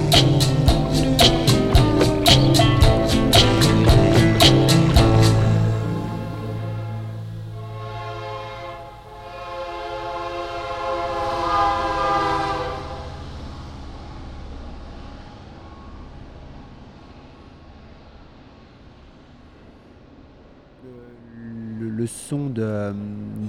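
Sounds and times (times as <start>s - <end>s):
train rumbling past: 0.0s - 23.4s
train horn blasts: 5.2s - 13.6s.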